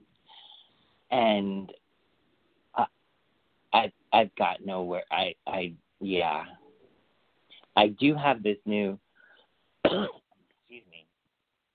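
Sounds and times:
speech: 1.1 - 1.8, 3.8 - 6.6, 7.8 - 9.0, 9.9 - 11.0
sharp cough: 9.8 - 10.3
soft brief throat clearing: 9.9 - 10.2.

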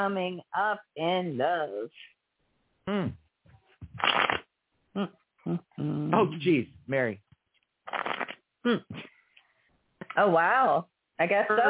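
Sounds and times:
speech: 0.0 - 2.2, 2.9 - 3.2, 4.0 - 4.4, 5.0 - 7.2, 7.9 - 9.1, 10.2 - 11.6
tarot cards being shuffled: 3.8 - 4.4.

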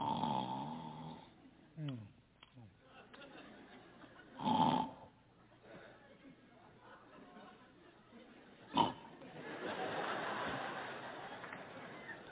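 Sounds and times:
person imitating loud rasping snores: 0.0 - 2.1, 4.4 - 5.1, 8.7 - 9.1
laughter: 2.6 - 4.5, 5.4 - 12.3.

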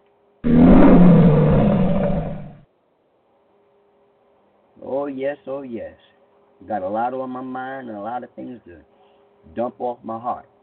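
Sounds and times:
lion roar: 0.4 - 2.6
speech: 5.2 - 10.5.

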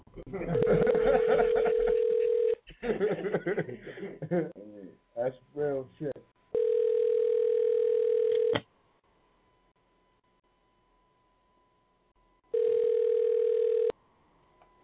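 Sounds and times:
laughter: 0.2 - 4.6
telephone ringback tone while calling a phone back: 0.7 - 2.6, 6.5 - 8.6, 12.5 - 13.9.

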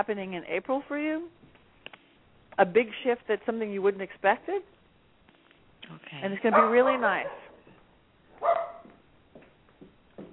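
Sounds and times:
speech: 0.0 - 1.4, 2.6 - 4.8, 5.9 - 7.4
dog barking: 6.5 - 7.6, 8.4 - 9.0.

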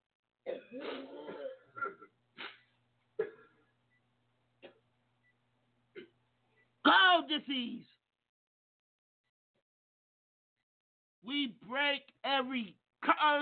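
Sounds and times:
person blowing nose: 0.7 - 1.3, 2.4 - 2.7
speech: 7.4 - 8.0, 11.5 - 13.4.

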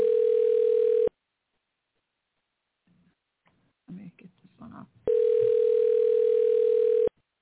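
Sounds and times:
telephone ringing in electronic bursts: 0.0 - 1.1, 5.1 - 7.1.

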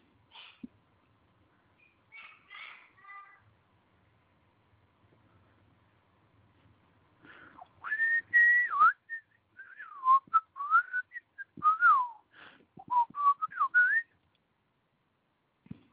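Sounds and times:
person whistling an improvised freestyle melody: 7.8 - 12.2, 12.8 - 14.1.

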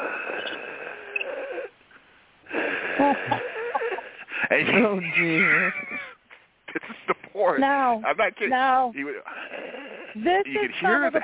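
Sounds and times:
voice imitating labored wheezing breathing of a man under an oxygen mask: 0.0 - 1.8, 2.5 - 4.5, 9.2 - 11.2
speech: 3.0 - 3.5, 4.5 - 5.8, 7.4 - 9.4, 10.1 - 11.2.

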